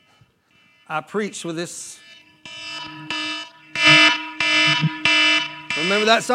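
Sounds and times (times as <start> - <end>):
speech: 0.9 - 2.1, 5.8 - 6.3
phone ringing with an alarm-style ringtone: 2.0 - 6.3.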